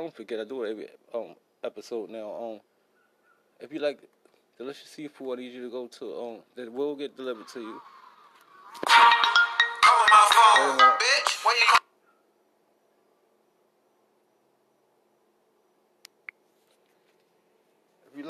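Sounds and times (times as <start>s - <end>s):
speech: 0.1s - 2.7s, 3.6s - 8.0s, 10.6s - 11.8s
phone ringtone melody: 8.8s - 11.8s.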